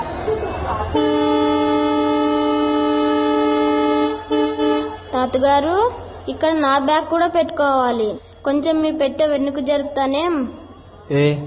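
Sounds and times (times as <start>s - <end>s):
train horn at a station: 0.9s - 5.2s
speech: 5.3s - 11.4s.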